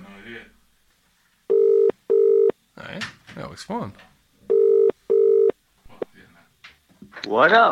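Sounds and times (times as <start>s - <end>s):
outgoing phone call ringback tone: 1.5s - 2.5s, 4.5s - 5.5s
speech: 3.0s - 4.1s, 7.2s - 7.7s.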